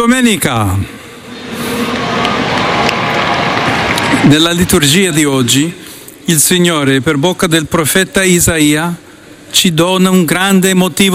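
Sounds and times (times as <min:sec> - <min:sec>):
speech: 0:00.0 - 0:01.0, 0:04.2 - 0:11.1
large outdoor crowd clapping in a square: 0:01.3 - 0:05.0.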